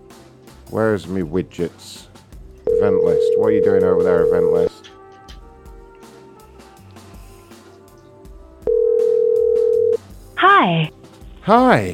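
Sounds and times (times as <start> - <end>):
speech: 0.7 - 2.1, 2.8 - 4.9, 10.6 - 11.9
telephone call tone: 2.7 - 4.7, 8.7 - 10.0.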